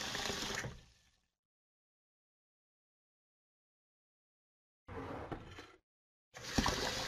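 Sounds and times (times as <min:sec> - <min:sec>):
water pouring into a container: 0:00.0 - 0:01.0, 0:06.4 - 0:07.0.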